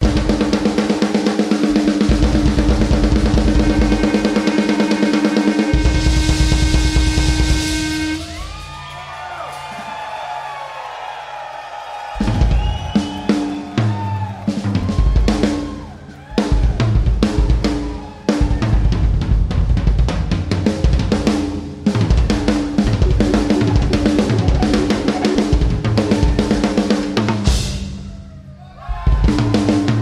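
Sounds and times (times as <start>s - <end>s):
drums playing live: 0.0s - 10.6s, 12.1s - 30.0s.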